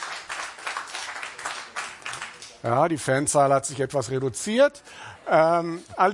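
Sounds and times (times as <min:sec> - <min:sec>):
audience clapping to vote a recording through: 0:00.0 - 0:02.6
speech: 0:02.6 - 0:06.1.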